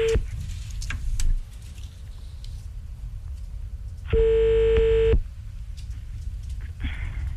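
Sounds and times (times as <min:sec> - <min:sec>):
loud steady telephone line tone: 0:00.0 - 0:00.2, 0:04.1 - 0:05.2
faint continuous tone: 0:00.0 - 0:07.3
soft low noise: 0:00.0 - 0:07.3.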